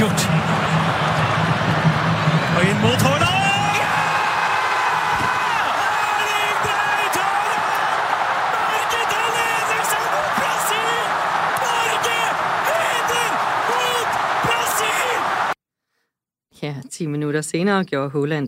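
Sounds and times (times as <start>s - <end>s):
crowd of thousands cheering and yelling at a football goal at Ullevål Stadium in Oslo: 0.0s - 15.6s
excited Norwegian football commentators shouting: 2.6s - 15.6s
speech: 17.4s - 18.4s.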